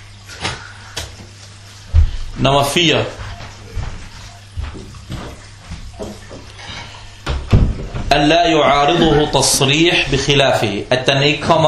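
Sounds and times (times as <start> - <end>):
low steady hum: 0.0 - 11.6
speech: 2.4 - 3.2, 8.2 - 11.6
knocking on a door: 7.3 - 8.1.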